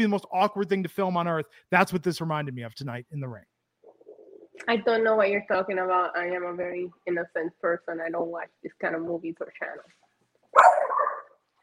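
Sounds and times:
speech: 0.0s - 3.5s, 4.6s - 10.8s
dog barking: 10.6s - 11.3s.

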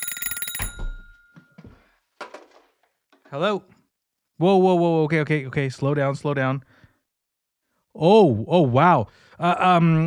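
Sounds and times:
telephone ringing: 0.0s - 1.9s
speech: 3.3s - 3.8s, 4.4s - 6.7s, 8.0s - 10.0s.

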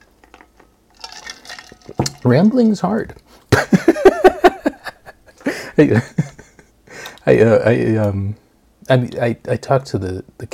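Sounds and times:
cup or bottle clinks and taps while handled: 1.7s - 2.2s
speech: 1.9s - 3.2s, 5.8s - 6.3s, 7.2s - 10.5s
laughter: 3.5s - 6.7s.

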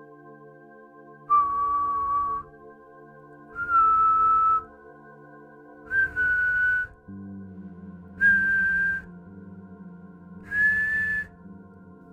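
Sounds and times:
low steady droning background: 0.0s - 12.1s
eerie whistle from a folklore legend in a rising scale: 3.6s - 4.7s, 5.9s - 7.0s, 8.2s - 9.1s, 10.4s - 11.4s.

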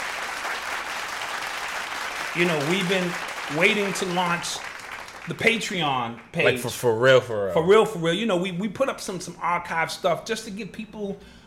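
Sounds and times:
applause from a group celebrating an online class launch: 0.0s - 6.4s
speech: 2.4s - 4.7s, 5.3s - 11.4s.

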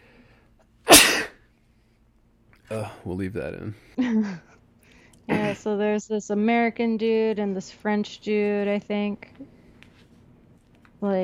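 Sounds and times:
loud sneeze: 0.9s - 1.4s
speech: 2.7s - 4.6s, 5.5s - 9.6s, 11.0s - 11.2s.

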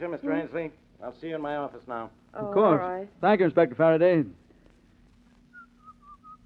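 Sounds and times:
speech: 0.0s - 4.4s
low hum: 0.0s - 6.4s
person whistling a short lively melody: 5.5s - 6.4s.

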